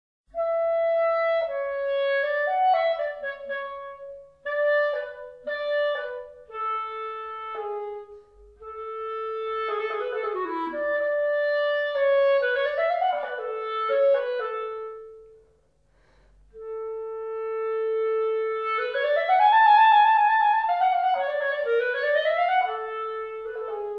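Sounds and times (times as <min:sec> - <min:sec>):
clarinet: 0:00.3 - 0:23.9.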